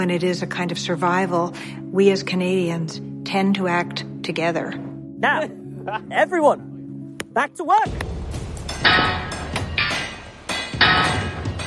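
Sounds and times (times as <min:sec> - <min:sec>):
speech: 0:00.0 - 0:06.7, 0:07.4 - 0:08.1
clanking industrial noise: 0:08.6 - 0:11.6
loud metallic hammering of rivets: 0:08.7 - 0:11.6.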